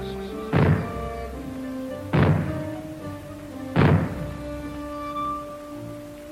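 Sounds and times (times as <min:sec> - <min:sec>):
booming bangs of a fallout warning signal: 0:00.5 - 0:01.2, 0:02.1 - 0:02.9, 0:03.8 - 0:04.6.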